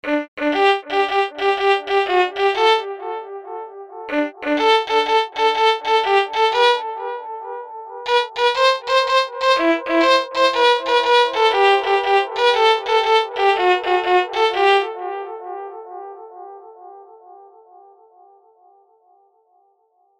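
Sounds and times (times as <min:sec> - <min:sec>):
kemane melody: 0:00.0 - 0:07.2, 0:08.1 - 0:15.5.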